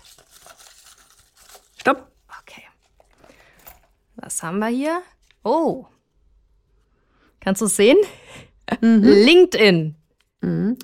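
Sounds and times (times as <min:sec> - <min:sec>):
hand digging through crinkly paper slips in a bag: 0:00.0 - 0:02.2
speech: 0:01.8 - 0:02.1, 0:04.3 - 0:06.0, 0:07.4 - 0:08.2, 0:08.8 - 0:10.8.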